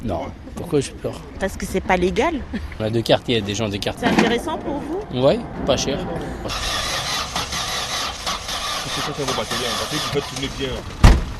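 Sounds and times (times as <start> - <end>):
voices: 0.0 - 6.8, 8.8 - 10.9
speech: 0.0 - 7.0, 9.0 - 11.0
car engine starting and running: 0.0 - 11.3.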